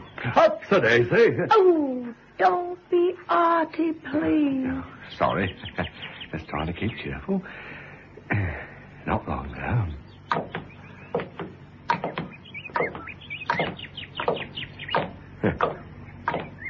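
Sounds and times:
dawn chorus of birds singing: 0.0 - 1.0, 4.6 - 16.6
speech: 0.2 - 7.7, 8.3 - 11.2.

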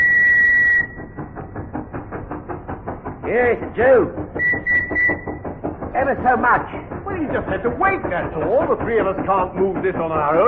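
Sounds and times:
steam train whistle: 0.0 - 1.0, 4.4 - 5.3
steam train chugging along the rails: 0.0 - 10.4
speech: 3.3 - 4.3, 6.0 - 10.4.

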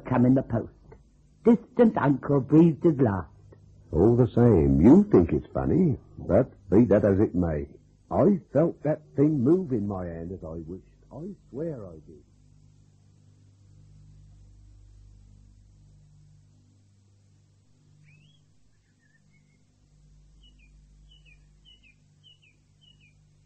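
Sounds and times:
steady low hum: 0.0 - 23.4
speech: 0.2 - 0.8, 1.4 - 3.3, 3.9 - 12.3
small bird chirping and whistling: 17.9 - 23.4.

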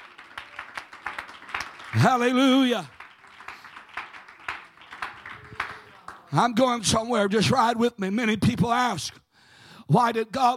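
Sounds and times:
audience clapping hands in a steady rhythm: 0.0 - 6.9
speech: 1.9 - 3.0, 6.3 - 9.2, 9.9 - 10.5.

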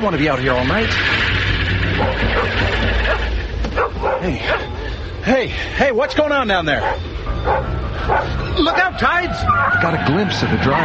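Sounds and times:
speech: 0.0 - 1.4, 2.0 - 3.3, 4.2 - 10.8
low rumble: 0.0 - 9.6
stray dog barking and yipping: 1.9 - 4.9, 6.8 - 10.0.

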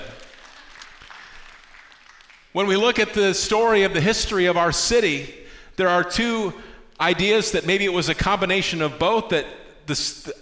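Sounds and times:
audience clapping: 0.0 - 2.7
speech: 2.6 - 10.4.

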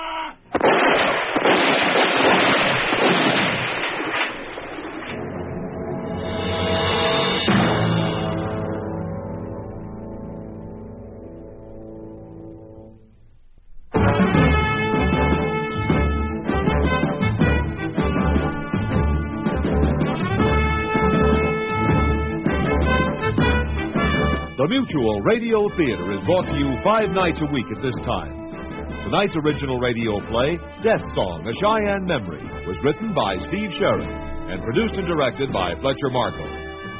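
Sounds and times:
rifle volley gunfire fired by a troop: 0.5 - 5.1
sustained tonal music: 5.2 - 36.9
speech: 24.8 - 36.6.

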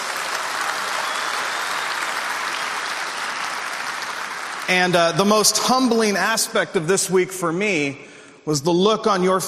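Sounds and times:
large crowd of adults applauding: 0.0 - 6.1
speech: 4.7 - 9.4.

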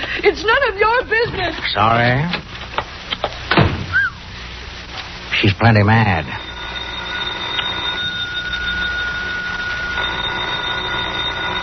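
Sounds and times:
hiss: 0.0 - 11.6
speech: 0.2 - 2.4, 5.4 - 6.5
telephone bell ringing: 6.2 - 11.6.

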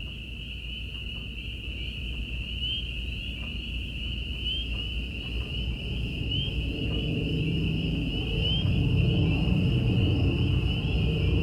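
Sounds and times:
crickets chirping at night: 0.0 - 11.4
peepers trilling on a country night: 0.0 - 11.4
low constant rumble: 3.3 - 11.4
katydids chirping at night: 4.4 - 11.4.

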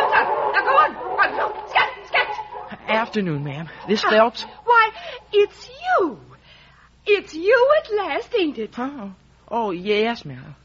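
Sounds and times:
several dogs barking and yipping: 0.0 - 5.8
speech: 2.9 - 4.7, 5.3 - 6.3, 7.1 - 10.6.

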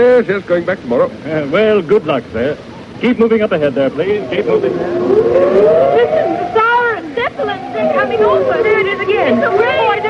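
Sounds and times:
speech: 0.0 - 6.6, 7.3 - 10.0
murmur of a crowd of people talking: 0.0 - 10.0
air raid siren wailing with rising and falling pitch: 3.7 - 10.0.

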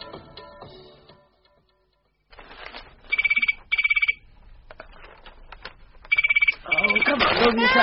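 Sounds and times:
telephone ringing with rapid bell trills: 3.1 - 4.3, 6.1 - 7.8
speech: 7.5 - 7.8.

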